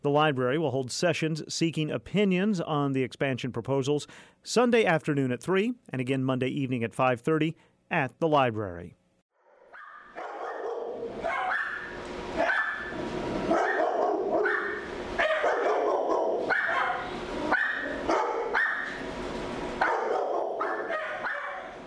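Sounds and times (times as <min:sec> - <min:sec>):
speech: 0:00.0 - 0:09.0
many dogs barking in a kennel: 0:09.7 - 0:19.1, 0:19.8 - 0:21.8.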